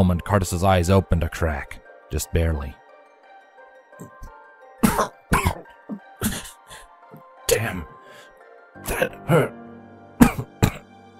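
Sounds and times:
speech: 0:00.0 - 0:02.8, 0:04.0 - 0:04.3, 0:04.9 - 0:05.2, 0:07.5 - 0:07.9, 0:08.8 - 0:09.6
man coughing up blood: 0:04.0 - 0:06.9, 0:08.8 - 0:09.6, 0:10.2 - 0:10.9.

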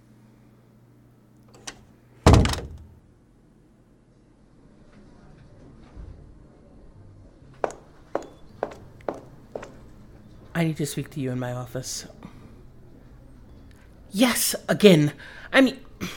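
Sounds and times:
heavy door slamming shut: 0:02.3 - 0:02.9
footsteps walking away: 0:07.6 - 0:10.0
speech: 0:10.6 - 0:12.2, 0:14.2 - 0:16.1.

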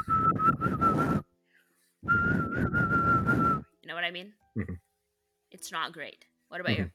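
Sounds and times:
weak breathy whistle: 0:00.0 - 0:01.3, 0:02.0 - 0:03.7
speech: 0:04.0 - 0:04.8, 0:05.6 - 0:06.9.

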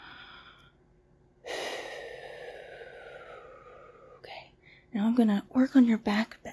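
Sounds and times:
deep breathing in and out during a guided relaxation session: 0:00.0 - 0:00.8, 0:01.4 - 0:04.9
speech: 0:04.9 - 0:06.5.

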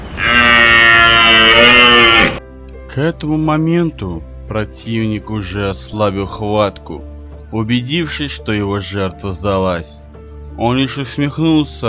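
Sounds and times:
fawn mooing: 0:00.1 - 0:02.4
speech: 0:03.0 - 0:10.0, 0:10.6 - 0:11.8.

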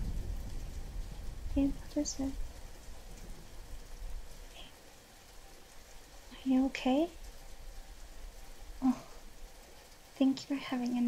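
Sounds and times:
steady rain from a storm: 0:00.0 - 0:11.0
speech: 0:01.6 - 0:02.5, 0:06.4 - 0:07.2, 0:10.2 - 0:11.0.

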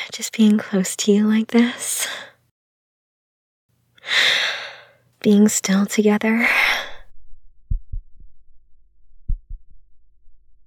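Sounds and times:
speech: 0:00.2 - 0:02.3, 0:05.2 - 0:06.6
deep heartbeat: 0:07.1 - 0:10.6.

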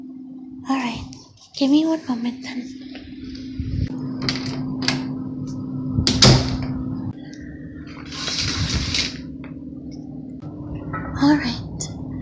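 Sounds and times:
steady low hum: 0:00.0 - 0:12.1
speech: 0:00.7 - 0:02.8
door shutting with a sharp knock: 0:04.2 - 0:05.2, 0:06.0 - 0:06.9, 0:07.9 - 0:09.3
curtains being drawn: 0:08.0 - 0:09.2.

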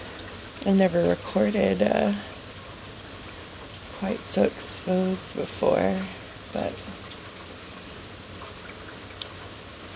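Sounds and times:
rain: 0:00.0 - 0:09.9
speech: 0:00.6 - 0:02.3, 0:04.0 - 0:07.0.

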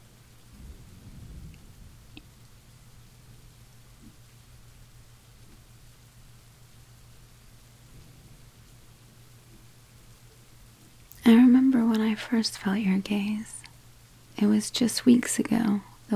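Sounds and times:
steady rain falling: 0:00.0 - 0:11.1
low rumble of thunder: 0:00.3 - 0:03.6
speech: 0:12.2 - 0:13.7, 0:14.4 - 0:16.1.

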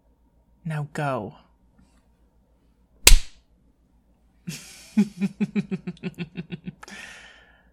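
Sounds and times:
speech: 0:00.7 - 0:01.5, 0:04.5 - 0:06.3
hand slapping buttocks: 0:03.1 - 0:03.4
breathy vocal gasps: 0:06.8 - 0:07.7.

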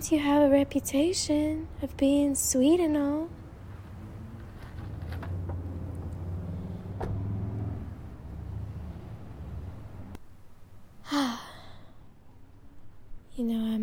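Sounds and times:
speech: 0:00.0 - 0:03.4
old truck engine rumbling on a country road: 0:00.0 - 0:11.0
faint rattles and clunks: 0:03.6 - 0:10.2
short breathy sigh: 0:11.0 - 0:12.1.

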